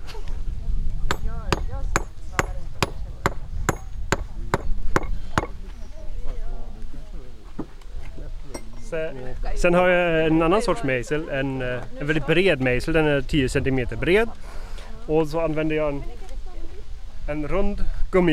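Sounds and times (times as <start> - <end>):
hafted stone axe striking a stone surface: 1.1 - 5.6
speech: 8.9 - 16.2, 17.3 - 18.3.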